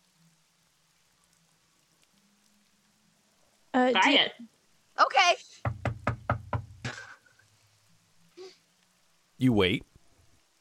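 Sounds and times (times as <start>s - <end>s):
speech: 3.8s - 5.6s, 9.4s - 9.9s
knocking on a door: 5.6s - 7.0s.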